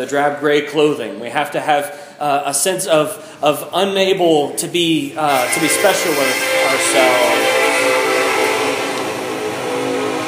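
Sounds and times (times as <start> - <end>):
speech: 0.0 - 7.6
sustained horn-like tones: 5.2 - 10.2
train passing outside: 5.3 - 10.2.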